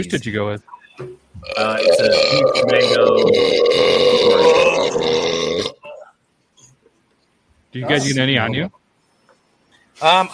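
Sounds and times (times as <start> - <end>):
speech: 0.0 - 5.8, 7.7 - 8.8, 10.0 - 10.3
long loud gravelly burp: 1.4 - 5.9.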